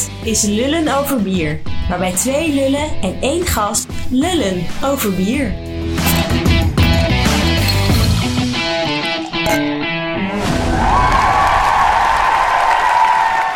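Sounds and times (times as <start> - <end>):
speech: 0.3 - 6.5
loud busy music: 5.7 - 9.8
crowd applause and cheering: 10.3 - 13.5.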